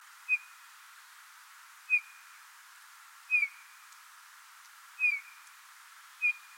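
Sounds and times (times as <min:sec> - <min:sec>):
quiet hiss: 0:00.0 - 0:06.5
Eurasian bullfinch Pyrrhula pyrrhula mellow piped calls: 0:00.3 - 0:00.6, 0:01.9 - 0:02.3, 0:03.3 - 0:03.8, 0:05.0 - 0:05.4, 0:06.2 - 0:06.5.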